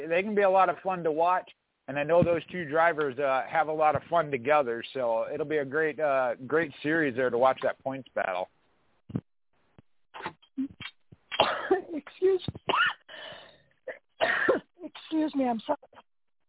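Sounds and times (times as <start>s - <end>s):
speech: 0.1s - 9.3s, 14.2s - 16.0s
person coughing and clearing throat: 11.4s - 11.9s, 12.7s - 13.0s, 13.9s - 14.8s.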